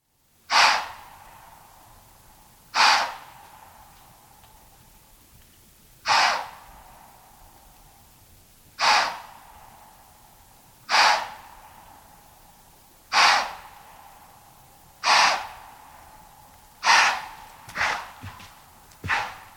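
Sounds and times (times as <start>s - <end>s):
white-tailed deer alarm call: 0.5s - 1.3s, 2.7s - 4.0s, 6.0s - 7.2s, 8.8s - 9.6s, 10.8s - 12.1s, 13.1s - 14.1s, 15.0s - 16.1s, 16.8s - 18.4s.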